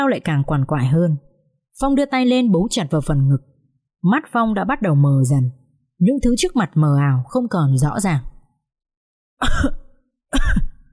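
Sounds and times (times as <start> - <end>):
speech: 0.0 - 8.3, 9.4 - 10.6
harsh coughs from someone coughing up blood: 9.4 - 10.9.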